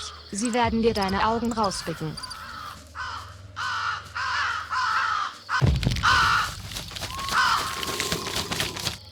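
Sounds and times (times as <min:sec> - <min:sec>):
speech: 0:00.3 - 0:02.3
ravens cawing: 0:01.8 - 0:09.1
raven wings flapping: 0:05.9 - 0:09.1.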